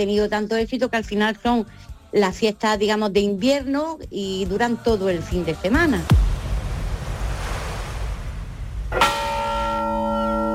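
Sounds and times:
speech: 0.0 - 6.2
surf: 4.9 - 10.5
wind: 6.0 - 10.5
single church bell ringing: 8.9 - 10.5.

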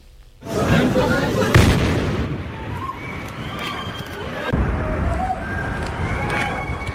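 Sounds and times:
bomb explosion on busy shopping street: 0.8 - 2.9, 4.5 - 6.2.

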